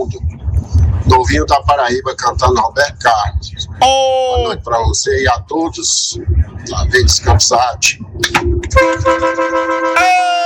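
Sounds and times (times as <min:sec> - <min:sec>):
speech: 0:01.1 - 0:10.4
truck horn honking: 0:08.6 - 0:10.4.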